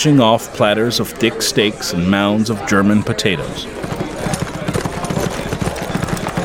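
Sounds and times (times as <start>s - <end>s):
speech: 0.0s - 4.0s
ridden horses' hooves clip-clopping on a hard street surface: 3.4s - 6.4s.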